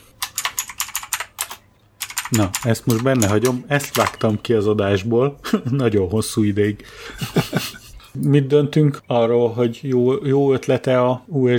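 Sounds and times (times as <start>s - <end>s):
typing on a clicky mechanical keyboard: 0.0s - 4.3s
speech: 2.3s - 11.5s
laughter: 7.0s - 8.0s.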